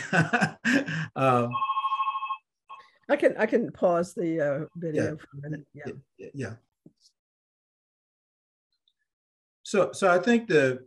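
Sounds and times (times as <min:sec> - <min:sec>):
speech: 0:00.1 - 0:01.7, 0:03.1 - 0:06.7, 0:09.7 - 0:10.8
telephone ringing with a rapid trilling electronic warble: 0:01.5 - 0:03.0.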